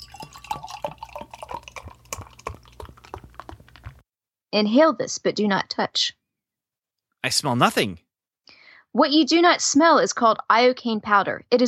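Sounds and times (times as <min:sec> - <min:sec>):
wine pouring into a glass: 0:00.0 - 0:04.0
speech: 0:04.5 - 0:06.2, 0:07.2 - 0:08.0, 0:08.9 - 0:11.6.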